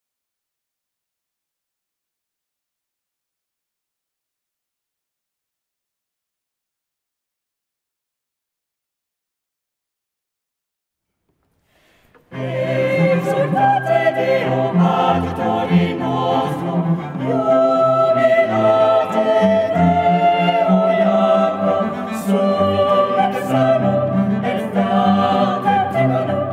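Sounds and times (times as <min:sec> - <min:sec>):
family ensemble: 0:11.8 - 0:26.5.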